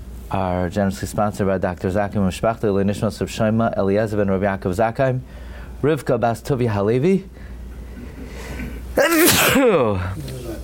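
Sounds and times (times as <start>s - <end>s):
speech: 0.3s - 7.5s, 9.0s - 10.3s
person sneezing: 8.4s - 10.6s.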